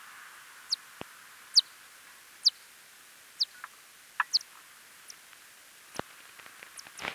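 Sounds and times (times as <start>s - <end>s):
steady hiss: 0.0s - 7.1s
lesser long-eared bat Nyctophilus geoffroyi echolocation chirps: 2.4s - 7.1s.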